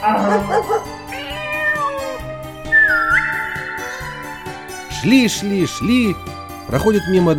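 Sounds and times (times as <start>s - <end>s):
speech: 0.0s - 0.7s, 5.0s - 7.3s
cat meowing: 0.0s - 4.9s.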